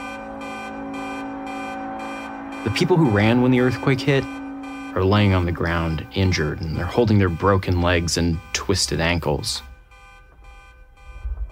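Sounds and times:
harsh pulsing sound: 0:00.0 - 0:07.4
car horns blaring outside a station after an earthquake: 0:00.0 - 0:10.6
speech: 0:02.6 - 0:04.4, 0:05.0 - 0:09.7.

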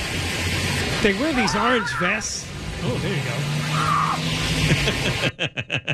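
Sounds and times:
car roaring: 0:00.0 - 0:05.4
tire squeal: 0:01.0 - 0:04.9
speech: 0:01.0 - 0:05.9
woman screaming while dragged by a car: 0:01.4 - 0:02.2, 0:03.6 - 0:04.3
laughter: 0:04.6 - 0:05.9.

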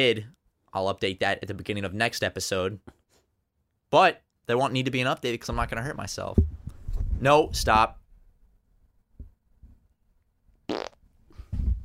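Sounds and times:
speech: 0:00.0 - 0:03.0, 0:03.9 - 0:06.5, 0:07.2 - 0:08.0, 0:10.7 - 0:11.0
loud buzzy fart: 0:10.7 - 0:11.0.

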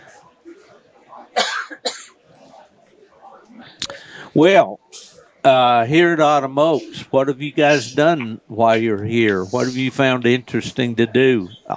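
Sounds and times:
faint low talk: 0:00.0 - 0:11.7
person clearing a tickle in the throat: 0:01.4 - 0:02.2
person coughing: 0:01.4 - 0:02.2
speech: 0:04.4 - 0:11.7.

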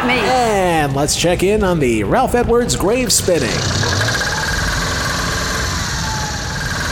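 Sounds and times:
speech: 0:00.8 - 0:04.3
four-cylinder car engine knocking with a thrown rod: 0:03.4 - 0:06.9.

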